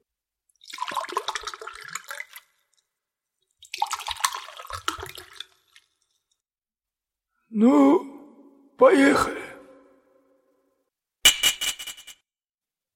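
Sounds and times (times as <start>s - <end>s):
drink pouring: 0.5s - 2.9s, 3.6s - 6.4s
speech: 7.6s - 8.1s, 8.8s - 9.4s.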